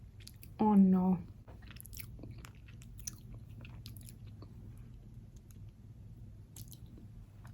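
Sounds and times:
low steady hum: 0:00.0 - 0:07.5
speech: 0:00.7 - 0:01.3
wet chewing and biting on soft squishy ice cream: 0:01.6 - 0:05.8, 0:06.5 - 0:07.5.

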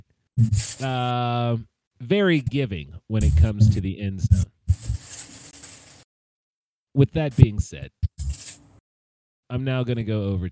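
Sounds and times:
speech: 0:00.4 - 0:04.5, 0:07.0 - 0:08.1, 0:09.5 - 0:10.5
low thumps: 0:03.2 - 0:05.0.

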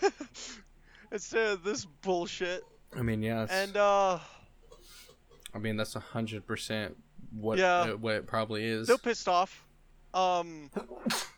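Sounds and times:
speech: 0:01.1 - 0:04.4, 0:05.5 - 0:11.3
person sneezing: 0:04.7 - 0:05.2, 0:10.8 - 0:11.3.

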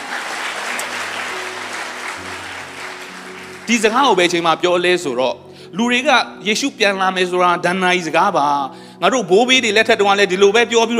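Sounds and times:
congregation applauding in praise during a church worship service: 0:00.0 - 0:04.7
speech: 0:03.7 - 0:10.9.

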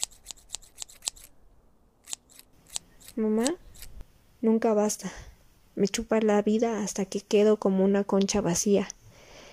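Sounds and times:
scissors snipping a woman's hair: 0:00.0 - 0:01.3, 0:02.0 - 0:04.0
speech: 0:03.2 - 0:03.6, 0:04.4 - 0:09.0.

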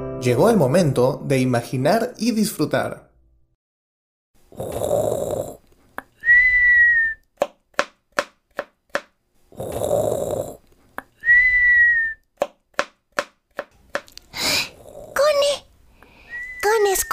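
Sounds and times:
speech: 0:00.3 - 0:03.1
deep rasping snoring: 0:04.5 - 0:05.6, 0:09.5 - 0:10.6, 0:14.6 - 0:15.2
short rising whistle: 0:06.2 - 0:07.2, 0:11.2 - 0:12.2, 0:16.2 - 0:17.1
sharp chopping knocks: 0:07.4 - 0:09.1, 0:12.4 - 0:14.1.

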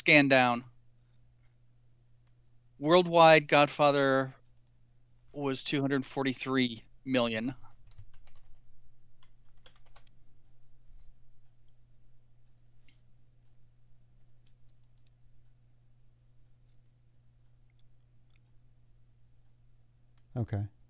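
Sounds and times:
speech: 0:00.0 - 0:00.7, 0:02.8 - 0:04.4, 0:05.3 - 0:07.6, 0:20.4 - 0:20.8
low steady hum: 0:00.0 - 0:20.8
typing on a computer keyboard: 0:07.7 - 0:08.6, 0:09.2 - 0:10.2.

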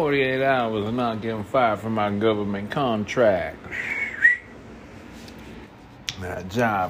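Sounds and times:
speech: 0:00.0 - 0:04.0, 0:06.2 - 0:06.8
person whistling a short bright note: 0:03.7 - 0:04.6.

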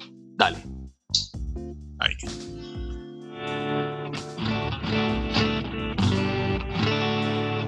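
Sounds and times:
speech: 0:00.4 - 0:00.7
clean electric guitar strumming chords without effects: 0:02.2 - 0:07.6.

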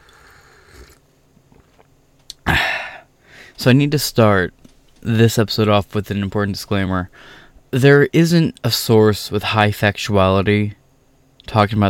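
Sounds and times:
slurping hot coffee: 0:00.0 - 0:01.0
speech: 0:03.6 - 0:10.8, 0:11.5 - 0:11.8.

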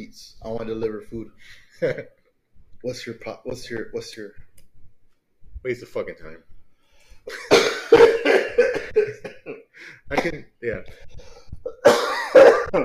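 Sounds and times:
speech: 0:00.0 - 0:02.2, 0:02.8 - 0:04.4, 0:05.6 - 0:06.5, 0:07.2 - 0:11.4, 0:12.3 - 0:12.8
person coughing: 0:07.3 - 0:10.4, 0:11.6 - 0:12.8.

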